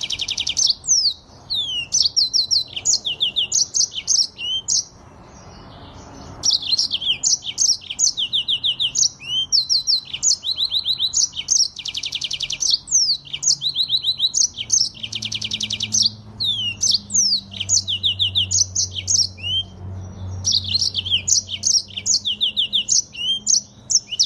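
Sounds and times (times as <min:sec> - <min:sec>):
streaked spiderhunter singing: 0:00.0 - 0:24.2.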